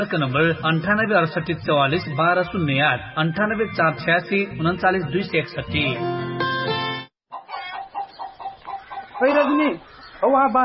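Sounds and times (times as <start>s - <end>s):
speech: 0.0s - 6.2s, 9.2s - 10.6s
chickens clucking: 7.3s - 10.6s.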